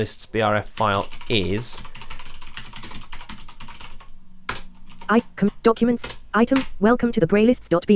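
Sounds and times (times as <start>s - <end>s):
speech: 0.0s - 1.9s, 5.1s - 7.9s
rapid typing on a computer keyboard: 0.8s - 6.8s.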